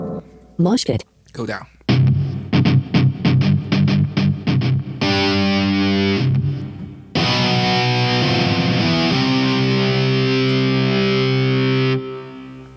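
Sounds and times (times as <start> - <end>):
speech: 0.6 - 1.8
heavily distorted electric guitar virtual instrument: 1.9 - 12.7.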